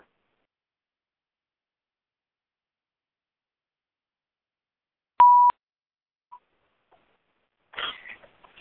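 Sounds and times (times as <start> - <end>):
phone keypad beep pressing star 6 on a phone line: 5.2 - 5.5.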